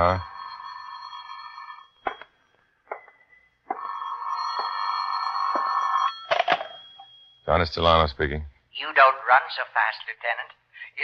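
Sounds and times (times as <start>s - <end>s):
speech: 0.0s - 0.3s, 7.5s - 11.0s
telephone ringing in an office: 0.0s - 7.5s.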